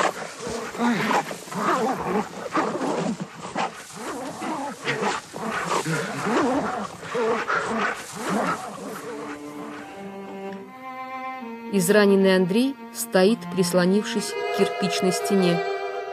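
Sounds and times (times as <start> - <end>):
aggressive dogs snarling and growling while mauling a man: 0.0 - 10.6
speech: 11.8 - 15.8.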